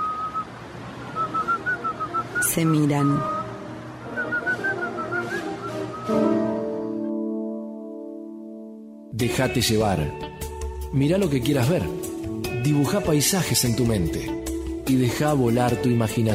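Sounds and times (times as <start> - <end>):
man whistling a lilting tune while walking past: 0.0 - 0.5, 1.2 - 2.5, 3.2 - 7.0
sustained musical tones: 0.0 - 16.3
speech: 2.5 - 3.4, 6.1 - 6.3, 9.2 - 16.3.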